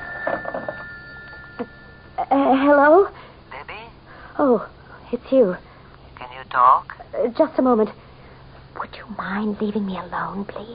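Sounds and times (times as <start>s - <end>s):
telephone bell ringing: 0.0s - 2.2s
steady hum: 0.0s - 10.7s
speech: 1.6s - 3.2s, 4.4s - 5.7s, 6.5s - 8.0s, 8.9s - 10.7s.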